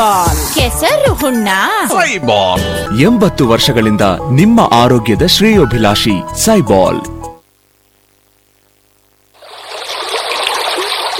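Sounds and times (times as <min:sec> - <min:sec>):
speech: 0:00.0 - 0:07.2
rainwater flowing fast in a dense rushing hiss: 0:09.4 - 0:11.1.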